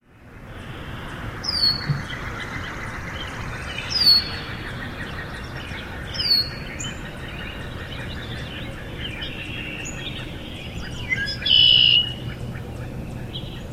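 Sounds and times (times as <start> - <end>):
redwing calling: 0.9 - 13.6.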